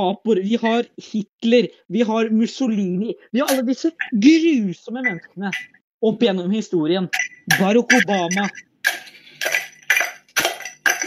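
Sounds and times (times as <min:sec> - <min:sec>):
speech: 0:00.0 - 0:08.7
ice cubes clinking and crunching as they are chopped up: 0:07.2 - 0:11.0.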